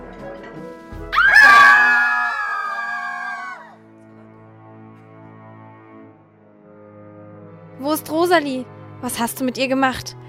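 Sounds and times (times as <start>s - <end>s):
dancers in a tavern screaming: 1.1s - 3.8s
speech: 7.9s - 10.2s.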